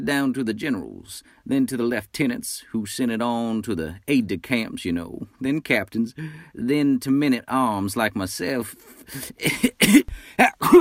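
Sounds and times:
speech: 0.0 - 10.7
harsh throaty coughs: 9.3 - 10.7.

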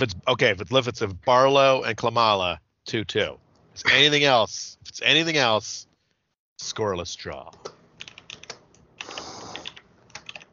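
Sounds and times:
speech: 0.0 - 5.9, 6.6 - 7.8
typing on a computer keyboard: 7.6 - 10.5.

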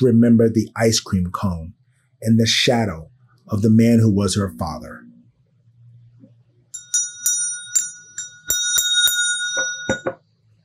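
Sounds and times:
speech: 0.0 - 5.1
bell ringing: 6.7 - 10.2.

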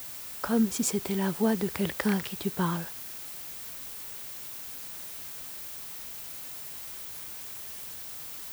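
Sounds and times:
white noise from a loudspeaker: 0.4 - 3.0
speech: 0.5 - 3.0.

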